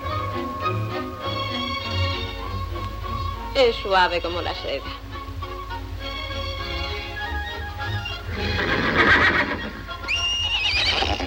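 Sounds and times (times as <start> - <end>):
steady low hum: 0.0 - 8.8
speech: 3.6 - 5.0
horse whinnying as a foal rejoins its mare on a ranch: 7.9 - 11.2.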